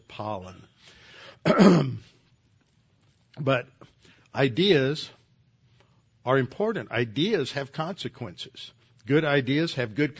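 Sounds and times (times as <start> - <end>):
speech: 0.1 - 2.1, 3.4 - 5.2, 6.3 - 10.1
raspy throat clearing with a coughing edge: 1.5 - 2.0.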